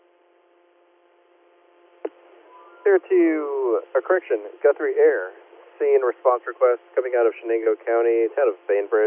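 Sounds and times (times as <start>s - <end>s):
faint radio hiss: 2.0s - 9.0s
speech: 3.0s - 9.0s.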